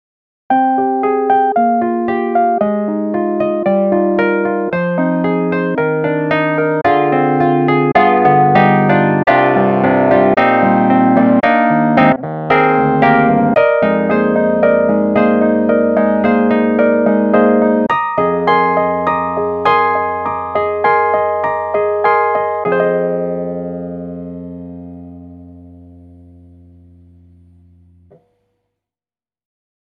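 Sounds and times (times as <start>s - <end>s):
electric piano: 0.5s - 28.2s.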